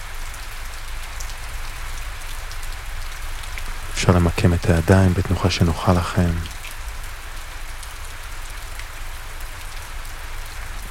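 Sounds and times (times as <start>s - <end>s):
dense tropical rainforest rain pattering on foliage: 0.0s - 10.8s
speech: 4.0s - 6.5s.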